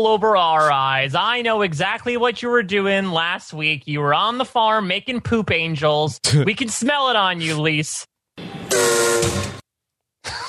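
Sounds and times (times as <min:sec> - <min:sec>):
speech: 0:00.0 - 0:08.1
train whistle: 0:08.6 - 0:09.6.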